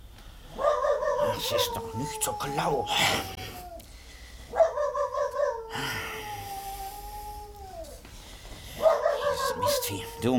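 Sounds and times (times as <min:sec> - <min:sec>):
dog barking at night: 0:00.6 - 0:01.8, 0:04.5 - 0:05.7, 0:08.8 - 0:10.0
dog howling at night: 0:00.6 - 0:03.9, 0:04.5 - 0:08.1, 0:08.7 - 0:10.3
speech: 0:01.4 - 0:03.5.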